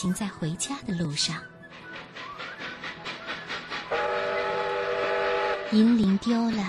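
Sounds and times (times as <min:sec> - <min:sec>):
speech: 0:00.0 - 0:01.6, 0:05.7 - 0:06.6
train lurching into motion with rhythmic chugging: 0:01.1 - 0:06.6
train whistle: 0:01.8 - 0:06.0.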